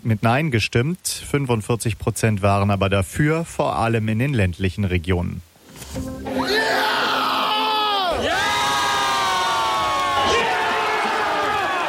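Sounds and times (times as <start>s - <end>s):
speech: 0.0s - 6.3s
large crowd of football fans cheering a win: 6.3s - 11.8s.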